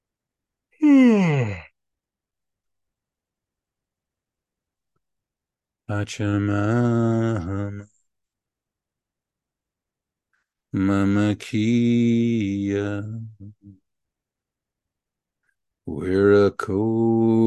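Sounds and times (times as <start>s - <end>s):
drawn-out vocal sigh: 0.8s - 1.7s
person yawning: 0.8s - 1.8s
speech: 5.9s - 8.0s, 10.8s - 13.8s, 15.9s - 17.4s.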